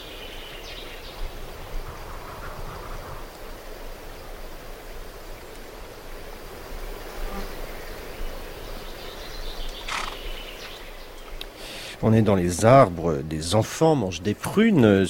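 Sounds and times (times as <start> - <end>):
faint outdoor noise: 0.0 - 15.0
flies buzzing around a donkey's eyes among trees: 0.3 - 12.0
speech: 12.0 - 15.0.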